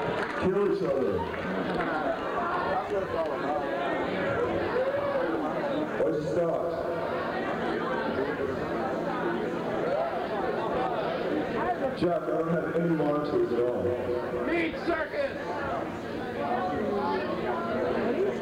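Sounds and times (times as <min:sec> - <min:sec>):
concert crowd: 0:00.0 - 0:18.3.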